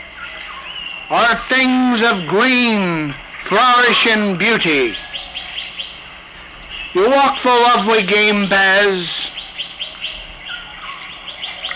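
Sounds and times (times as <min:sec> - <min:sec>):
bright repeated bird chirps in jungle treetops: 0:00.0 - 0:01.2, 0:01.9 - 0:07.6, 0:09.3 - 0:11.7
birds singing in jungle treetops: 0:00.0 - 0:11.7
speech: 0:01.1 - 0:05.1, 0:06.9 - 0:09.4.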